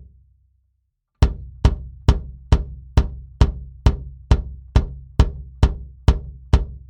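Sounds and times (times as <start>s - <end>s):
bass drum hits in a microphone test: 1.2s - 6.7s.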